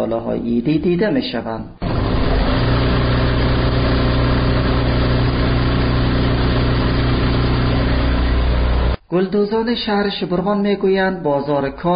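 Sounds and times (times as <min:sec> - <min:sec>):
speech: 0:00.0 - 0:01.8, 0:09.1 - 0:11.9
embroidery machine motor running: 0:01.8 - 0:09.0.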